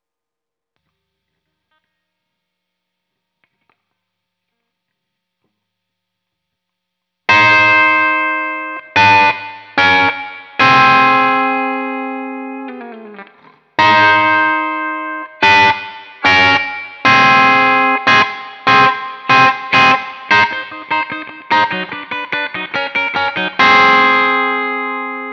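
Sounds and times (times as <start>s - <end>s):
guitar intro on the left channel: 7.3s - 25.3s.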